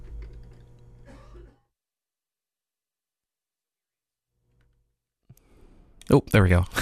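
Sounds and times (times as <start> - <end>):
person coughing caused by smoke: 1.0 - 1.7
throat clearing caused by smoke: 1.0 - 1.7
speech: 6.1 - 6.8.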